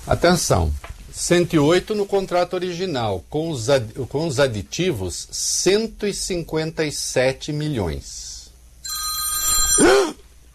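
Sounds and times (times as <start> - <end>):
speech: 0.0 - 8.4, 9.8 - 10.2
telephone ringing from an accidental call: 8.8 - 10.0.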